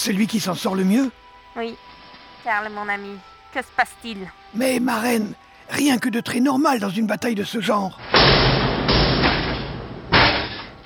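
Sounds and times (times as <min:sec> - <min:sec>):
speech: 0:00.0 - 0:08.6
heavy blows smashing in a wooden door: 0:08.0 - 0:10.8.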